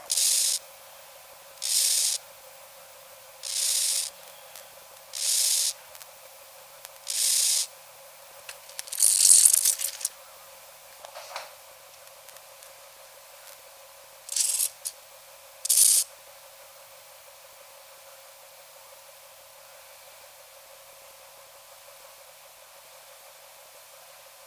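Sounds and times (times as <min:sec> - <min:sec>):
Chorthippus dichrous stridulating in a lab recording at 35°C: 0:00.1 - 0:00.8, 0:01.5 - 0:02.3, 0:03.3 - 0:07.7, 0:08.4 - 0:10.2, 0:14.2 - 0:15.0, 0:15.6 - 0:16.1.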